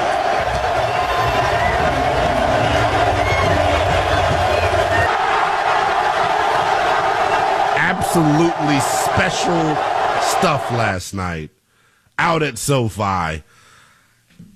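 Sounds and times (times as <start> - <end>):
huge stadium crowd roaring: 0.0 - 11.3
speech: 8.2 - 11.6, 12.2 - 13.6.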